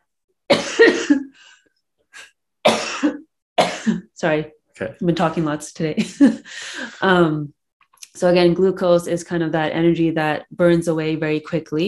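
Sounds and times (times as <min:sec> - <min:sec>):
loud harsh cough: 0:00.5 - 0:01.4, 0:02.7 - 0:04.1
speech: 0:03.9 - 0:07.6, 0:08.2 - 0:11.8.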